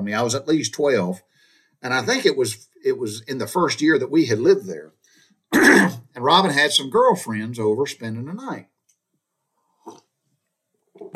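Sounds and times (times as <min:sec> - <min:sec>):
speech: 0:00.0 - 0:08.7, 0:09.8 - 0:10.0
person slurping coffee: 0:09.8 - 0:10.1
person swallowing: 0:09.8 - 0:10.1.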